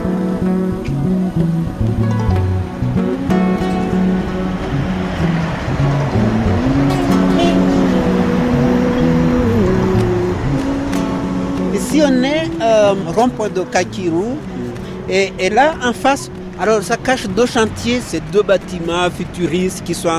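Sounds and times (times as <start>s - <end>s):
presidential car engine droning through traffic: 0.0s - 20.1s
roadway rumble: 0.0s - 20.1s
speech: 12.9s - 14.5s, 15.1s - 20.1s.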